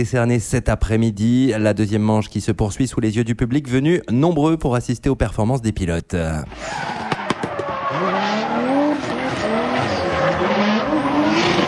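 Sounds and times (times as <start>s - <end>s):
speech: 0.0s - 7.1s
drift car tires squealing at a drift competition in an arena: 6.5s - 11.6s
drift car engine roar: 7.9s - 11.6s.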